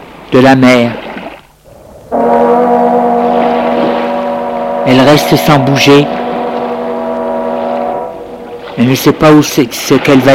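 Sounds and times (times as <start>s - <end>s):
faint noise of the sea: 0.0s - 10.3s
speech: 0.3s - 1.0s, 4.9s - 6.2s, 8.8s - 10.3s
ship's horn low blasts: 1.6s - 9.9s.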